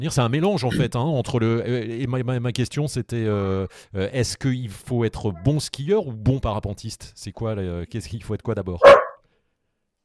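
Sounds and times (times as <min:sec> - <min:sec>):
speech: 0:00.0 - 0:09.1
sharp dog bark: 0:08.8 - 0:09.2.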